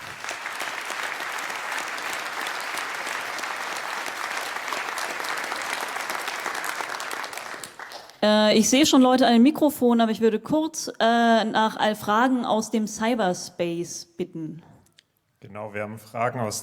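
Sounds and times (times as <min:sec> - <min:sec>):
audience applause: 0:00.0 - 0:08.2
speech: 0:08.2 - 0:14.7, 0:15.6 - 0:16.6.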